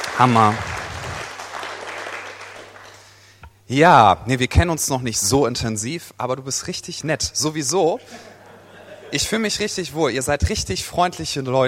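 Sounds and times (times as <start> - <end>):
audience applause at a live event: 0.0 - 3.1
low constant hum: 0.0 - 11.6
speech: 0.2 - 0.7, 3.7 - 8.3, 9.1 - 11.6
laughter: 8.0 - 9.5.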